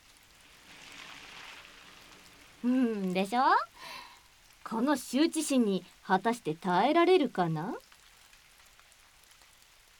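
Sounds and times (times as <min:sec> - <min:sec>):
steady rain falling: 0:00.0 - 0:09.9
speech: 0:02.6 - 0:04.0, 0:04.7 - 0:07.9.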